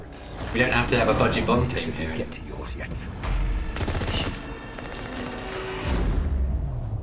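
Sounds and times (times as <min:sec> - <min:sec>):
speech: 0:00.5 - 0:03.4
rapid gunfire: 0:03.6 - 0:05.9.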